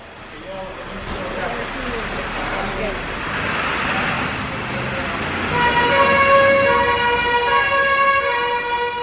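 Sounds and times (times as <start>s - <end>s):
busy roadway traffic rumble: 0.0s - 9.0s
fire engine siren blaring for a vegetation fire emergency: 5.3s - 9.0s.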